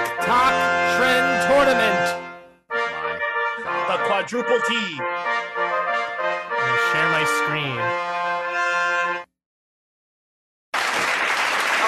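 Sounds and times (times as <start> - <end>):
blaring horn-like tone: 0.0 - 5.2, 6.5 - 9.3
speech: 4.2 - 5.7, 6.9 - 8.2
burst of loud dense applause: 10.8 - 11.8.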